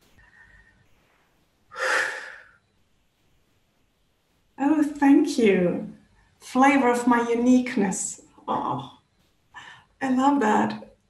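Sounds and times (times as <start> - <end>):
deep breathy inhale-exhale: 0.0 - 2.7
speech: 5.0 - 9.0, 10.0 - 10.8.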